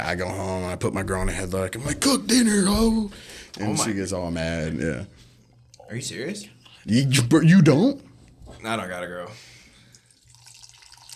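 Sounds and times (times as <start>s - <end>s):
speech: 0.0s - 5.3s, 5.9s - 9.6s
energy drink pouring into a cup: 9.9s - 11.1s.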